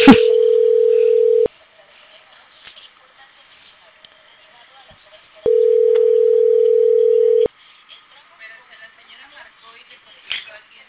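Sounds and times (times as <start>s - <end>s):
telephone tone: 0.0s - 1.5s, 5.5s - 7.5s
faint noise: 0.0s - 10.8s.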